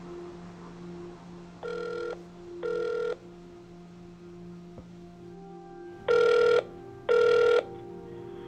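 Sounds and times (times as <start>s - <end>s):
faint steady hum: 0.0s - 8.4s
telephone ringing during call transfer: 1.6s - 3.2s, 6.1s - 7.7s.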